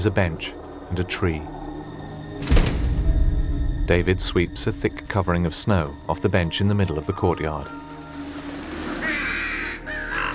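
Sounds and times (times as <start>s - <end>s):
speech: 0.0s - 1.6s, 2.4s - 2.6s, 3.9s - 7.8s
steady low rumble: 0.0s - 6.6s
crows cawing from a roost in a tree above a snowy courtyard: 8.8s - 10.3s.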